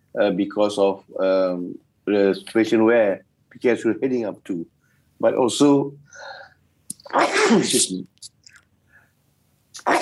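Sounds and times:
speech: 0.2 - 6.4, 7.1 - 8.4
small mouth clicks: 6.9 - 7.2, 9.7 - 10.0
loud sneeze: 7.0 - 7.9, 9.8 - 10.0.

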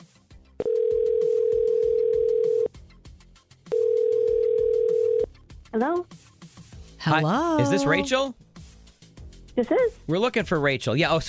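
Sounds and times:
loud steady telephone ringback tone: 0.6 - 2.7, 3.7 - 5.3
speech: 7.1 - 8.4, 9.5 - 11.2.

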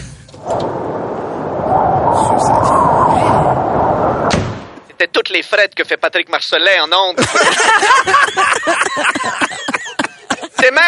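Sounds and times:
drawn-out creaking whine: 0.0 - 4.9
loud rumbling burst of noise: 0.0 - 5.0
door swinging open and slamming shut: 4.2 - 4.8
speech: 5.1 - 9.2, 10.6 - 10.8
laughter: 7.2 - 10.8.

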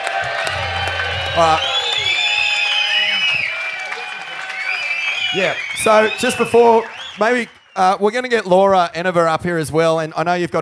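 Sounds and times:
live audience cheering and whooping: 0.0 - 7.5
live audience clapping: 0.0 - 8.8
speech: 1.4 - 1.7, 5.3 - 10.6.

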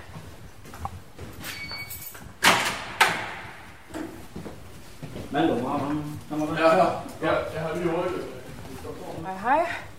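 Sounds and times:
white door squeaking in a long corridor of a barracks building: 1.4 - 2.8
white door clacking as it is opened in a barracks corridor: 1.4 - 4.1
speech: 5.4 - 8.3, 8.9 - 9.8.

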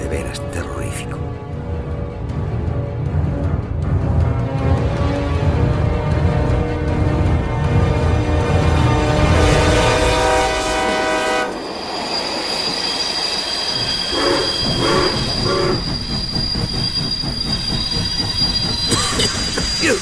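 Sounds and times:
heavy rumble of train carriages: 0.0 - 20.0
rhythmic clanks of slowing train: 1.2 - 10.0, 13.2 - 20.0
train wheels squealing as train arrives: 11.5 - 20.0.

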